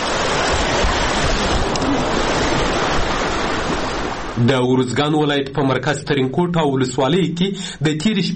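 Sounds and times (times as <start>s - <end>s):
rushing floodwater flowing past homes after overnight rains in Uruzgan province: 0.0s - 8.3s
speech: 4.4s - 8.3s.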